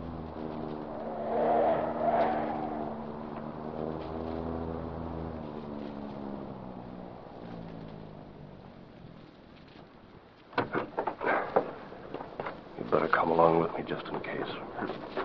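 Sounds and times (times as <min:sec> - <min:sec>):
car engine humming: 0:00.0 - 0:15.2
sharp clunks and rattles: 0:10.5 - 0:13.0
speech: 0:13.4 - 0:15.2.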